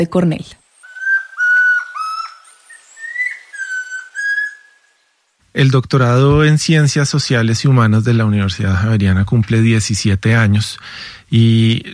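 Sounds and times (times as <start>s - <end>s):
speech: 0.0s - 0.6s, 5.5s - 11.9s
chestnut-crowned antpitta singing whistled notes: 0.7s - 5.1s.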